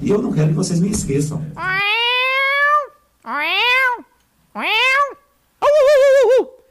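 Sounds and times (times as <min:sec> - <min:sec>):
speech: 0:00.0 - 0:01.8
person imitating cat meows: 0:01.6 - 0:06.4.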